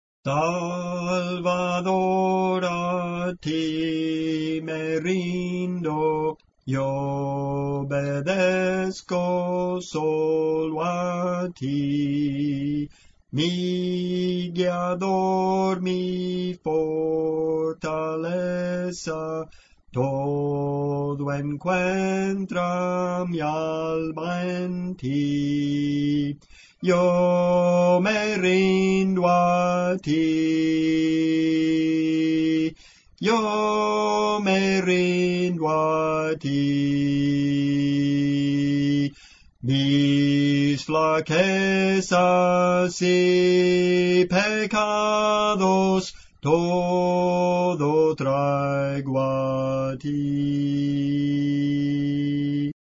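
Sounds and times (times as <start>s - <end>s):
contralto singing spiritual songs: 0.2s - 52.8s.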